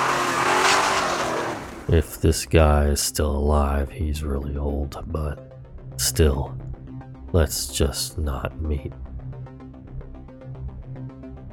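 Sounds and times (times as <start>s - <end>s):
car tires hissing while peeling out: 0.0s - 2.1s
car engine revving while peeling out: 0.0s - 2.3s
speech: 1.9s - 6.7s, 7.3s - 9.0s.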